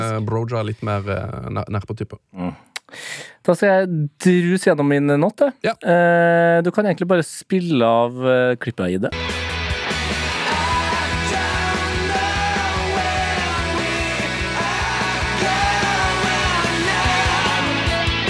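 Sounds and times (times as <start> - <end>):
speech: 0.2 - 9.4
rock song blasted from stadium speakers: 9.1 - 18.2
many voices shouting and singing along in a stadium: 9.8 - 18.2.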